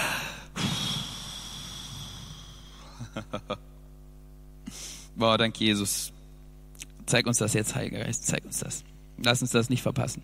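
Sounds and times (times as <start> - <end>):
group of people inhaling deeply together: 0.0 - 3.0, 4.6 - 5.2
speech: 5.2 - 6.2, 7.1 - 10.2.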